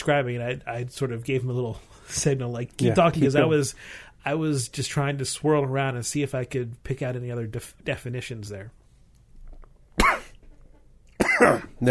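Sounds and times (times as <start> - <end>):
speech: 0.0 - 8.8, 11.4 - 11.8
low room noise: 0.0 - 11.8
single sharp cough with a rasping tail: 10.0 - 10.4, 11.2 - 11.8.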